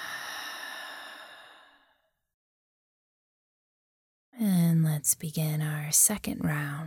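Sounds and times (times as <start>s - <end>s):
slow breathy exhale during breathing exercise: 0.0s - 2.1s
speech: 5.0s - 6.8s.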